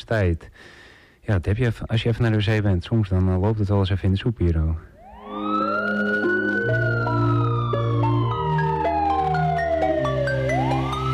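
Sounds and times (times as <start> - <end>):
speech: 0.0 - 4.9
police siren wailing: 5.0 - 11.1.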